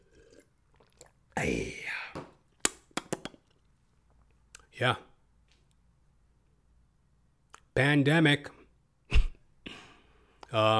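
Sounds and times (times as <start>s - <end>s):
slurp of water: 0.0s - 1.7s
gulp: 0.0s - 2.2s
speech: 4.8s - 5.1s, 7.8s - 8.6s, 10.5s - 10.7s.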